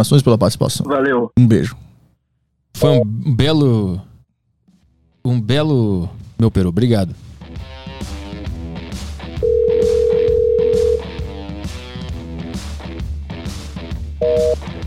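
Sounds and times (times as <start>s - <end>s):
speech: 0.0s - 1.8s, 2.8s - 4.1s, 5.2s - 7.3s
unanswered telephone call ringing tone on the line: 9.4s - 11.3s, 14.2s - 14.6s.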